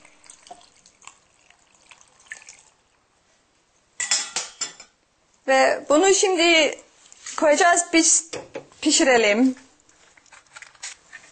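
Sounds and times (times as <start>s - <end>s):
water poured over a pastry covered with chard and beans: 0.0s - 3.0s
speech: 5.5s - 6.8s, 7.4s - 9.6s.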